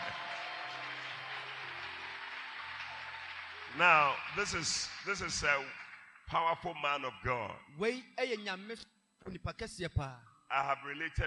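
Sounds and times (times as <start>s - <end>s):
steady dense applause from an audience: 0.0s - 6.2s
speech: 3.8s - 11.2s.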